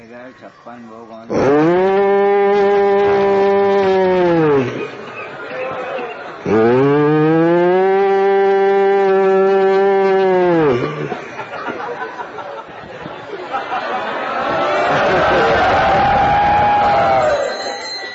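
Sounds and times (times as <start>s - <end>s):
crowd noise: 0.0s - 18.1s
murmuring voices: 0.0s - 18.1s
cows mooing: 1.3s - 11.8s
laughter: 2.0s - 18.1s.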